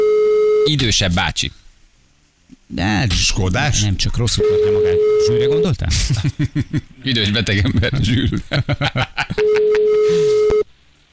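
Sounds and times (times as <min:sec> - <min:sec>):
telephone ringing tone: 0:00.0 - 0:00.7, 0:04.4 - 0:05.6, 0:09.4 - 0:10.6
speech: 0:00.7 - 0:01.6, 0:02.7 - 0:10.6
laughter: 0:05.9 - 0:10.5.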